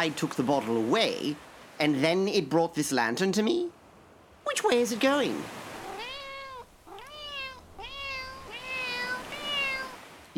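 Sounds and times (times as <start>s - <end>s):
speech: 0.0s - 3.8s, 4.4s - 5.7s
cat meowing: 5.8s - 10.0s.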